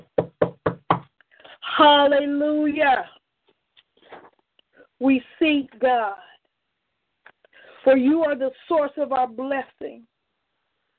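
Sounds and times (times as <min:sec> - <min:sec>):
firm knocking: 0:00.0 - 0:01.1
speech: 0:01.8 - 0:03.2, 0:05.0 - 0:06.3, 0:07.8 - 0:10.1.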